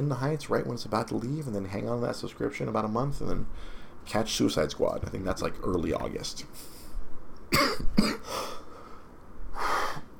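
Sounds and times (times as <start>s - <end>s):
speech: 0.0s - 6.8s
person coughing: 7.5s - 8.4s
raspy breathy exhalations: 8.2s - 10.1s.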